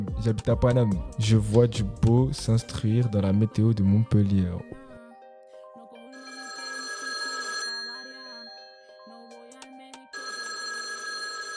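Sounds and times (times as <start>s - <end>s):
speech: 0.2s - 4.8s
telephone bell ringing: 6.1s - 11.5s.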